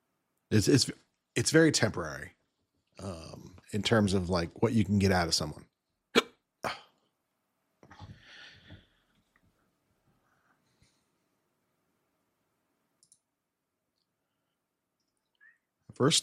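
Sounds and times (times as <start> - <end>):
speech: 0.5 - 2.4, 3.0 - 5.7, 16.0 - 16.2
hiccups: 6.1 - 6.8.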